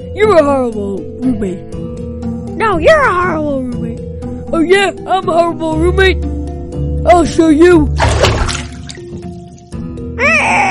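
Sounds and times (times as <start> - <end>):
speech: 0.2 - 1.9, 2.6 - 6.3, 7.0 - 8.0
water splashing from a mop: 8.0 - 9.7.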